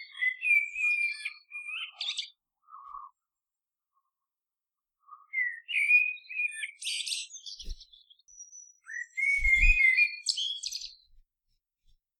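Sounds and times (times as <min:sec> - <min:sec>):
bird song with warbled whistled phrases and buzzy chattering bursts: 0:00.0 - 0:03.4, 0:05.0 - 0:11.2
soft low thump: 0:09.4 - 0:09.8.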